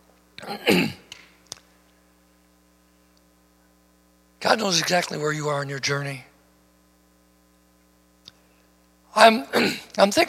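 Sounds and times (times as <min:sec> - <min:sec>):
raspy throat-clearing cough: 0:00.4 - 0:01.1, 0:09.5 - 0:10.0
speech: 0:00.5 - 0:01.0, 0:04.5 - 0:06.3, 0:09.2 - 0:10.2
small clicks: 0:01.1 - 0:01.7.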